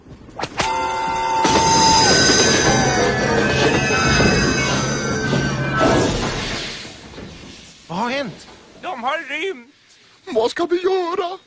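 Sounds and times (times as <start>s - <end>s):
train brakes squealing: 0.6s - 7.9s
speech: 9.2s - 11.4s.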